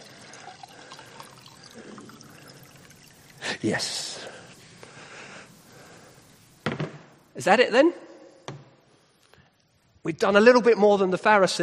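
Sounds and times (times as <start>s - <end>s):
water pouring steadily into a container: 0.0s - 4.2s
speech: 3.6s - 4.2s, 7.4s - 8.1s, 10.1s - 11.6s.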